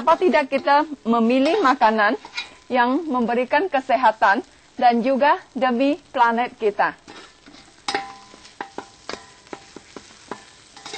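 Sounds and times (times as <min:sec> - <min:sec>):
utensil scraping and clinking against the pan: 0:00.0 - 0:02.7, 0:07.0 - 0:10.9
speech: 0:00.0 - 0:07.1
food with torch ginger flower sizzling in a hot pan: 0:00.0 - 0:10.9.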